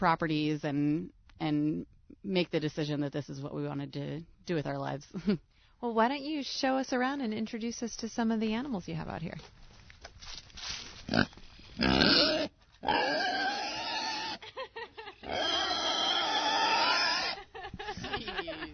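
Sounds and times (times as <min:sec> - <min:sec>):
speech: 0:00.0 - 0:09.6, 0:11.1 - 0:13.4
excited pig grunting and squealing: 0:11.1 - 0:14.4, 0:15.2 - 0:17.4
laughter: 0:14.4 - 0:15.4, 0:17.1 - 0:18.7.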